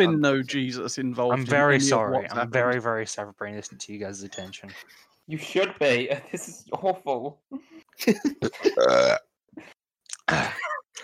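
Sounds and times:
speech: 0.0 - 10.7
loud drawn-out burp: 8.8 - 9.4, 10.2 - 10.8.

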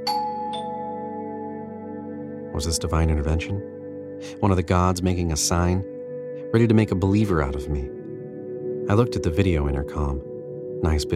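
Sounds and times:
two-tone doorbell chime: 0.0 - 2.1
speech: 2.6 - 8.0, 8.9 - 11.1.

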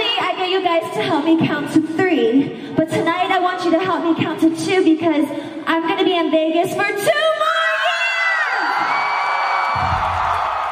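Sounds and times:
speech: 0.7 - 7.6
scattered high shouts from a concert crowd: 7.4 - 10.7
large concert crowd cheering and whooping at a live show in Las Vegas: 8.3 - 10.7.

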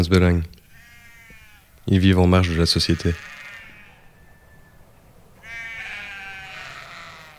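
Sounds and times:
speech: 0.0 - 0.6, 1.8 - 3.4
sheep bleating in morning mist near the Château de Beauvorde: 0.6 - 4.2, 5.4 - 7.3.

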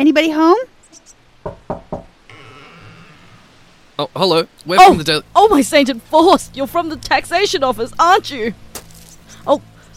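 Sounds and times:
speech: 0.0 - 1.6, 4.0 - 8.6, 9.4 - 9.7
knocking on a door: 1.4 - 2.1.

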